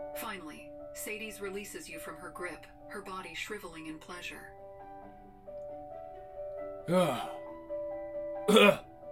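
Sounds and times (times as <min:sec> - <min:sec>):
speech: 0:00.2 - 0:04.6, 0:06.8 - 0:07.4, 0:08.5 - 0:08.8
harsh raspy coughs or throat-clearing bursts: 0:06.9 - 0:07.4, 0:08.5 - 0:08.8.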